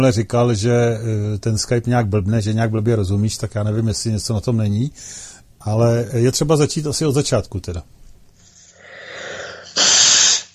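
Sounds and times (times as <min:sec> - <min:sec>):
speech: 0:00.0 - 0:08.0
nose blowing: 0:08.7 - 0:10.5.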